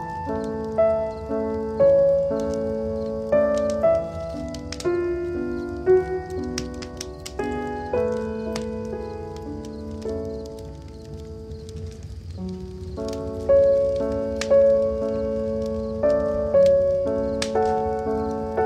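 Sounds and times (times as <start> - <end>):
firewood crackling with pops and snaps: 0.0 - 18.6.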